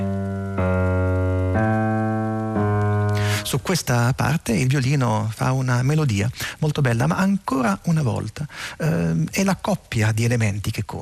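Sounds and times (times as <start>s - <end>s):
slow chromatic bass line in semitones: 0.0s - 3.3s
speech: 3.5s - 11.0s.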